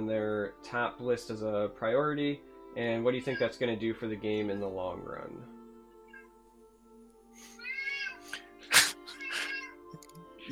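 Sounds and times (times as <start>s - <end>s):
speech: 0.0s - 5.6s
cat meowing: 7.6s - 8.2s, 9.1s - 9.8s.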